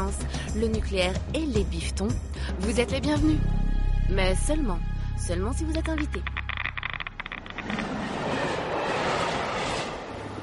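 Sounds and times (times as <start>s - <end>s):
speech: 0.1s - 6.3s
train rumbling at a railway station: 7.2s - 10.4s.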